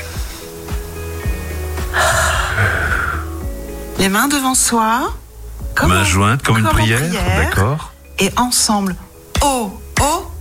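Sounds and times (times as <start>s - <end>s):
steady low tonal background: 0.0s - 10.4s
deep inhale during a breathing exercise: 1.1s - 3.4s
speech: 4.0s - 5.2s, 5.8s - 10.2s.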